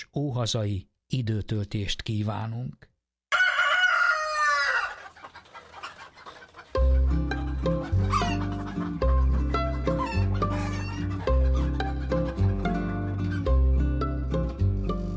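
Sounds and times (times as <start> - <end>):
speech: 0.0 - 2.9
rooster crowing: 3.3 - 5.0
bright instrumental music with a steady bass line: 6.8 - 15.1.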